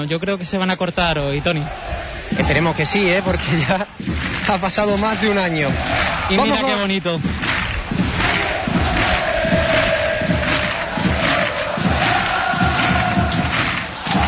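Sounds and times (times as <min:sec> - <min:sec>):
speech: 0:00.0 - 0:07.5
roar of stadium crowd voices chanting: 0:01.5 - 0:06.8, 0:07.4 - 0:14.2
big stadium crowd clapping in a steady rhythmic beat: 0:02.4 - 0:14.2.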